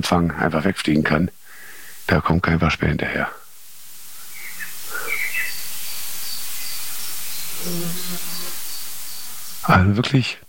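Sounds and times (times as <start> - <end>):
speech: 0.0 - 1.4, 2.1 - 3.4, 9.6 - 10.4
other birds chirping: 0.0 - 10.4
steady hiss: 0.0 - 10.4
agitated blackbird calls: 4.2 - 9.7.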